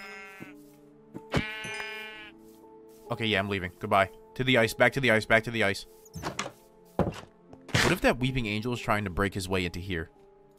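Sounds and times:
sheep bleating with wavering nasal calls: 0.0 - 0.6, 1.3 - 2.4
speech: 3.1 - 6.4, 7.9 - 10.2.

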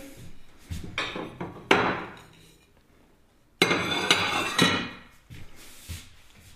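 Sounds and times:
plates and dishes clattering as they are unloaded from a kitchen cupboard: 0.9 - 2.7, 3.6 - 5.1.

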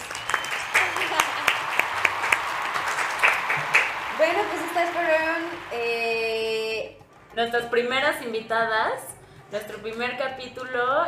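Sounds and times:
small group clapping hands: 0.0 - 6.0
speech: 4.4 - 6.1, 7.4 - 11.0.

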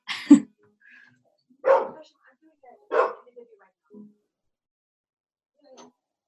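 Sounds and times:
dog barking: 1.6 - 2.0, 2.9 - 3.3.

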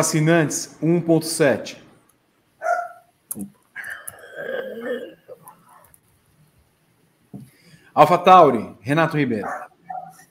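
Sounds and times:
speech: 0.0 - 1.8, 3.3 - 3.6, 8.0 - 9.7
dog barking: 2.6 - 3.1, 9.4 - 10.2
dog yelping: 2.6 - 3.1, 3.8 - 5.9, 9.4 - 10.2.

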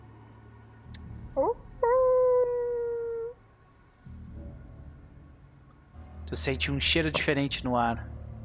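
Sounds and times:
low rumbling outdoor background: 0.0 - 8.4
canine howling in the distance: 1.4 - 3.4
speech: 6.3 - 8.1.

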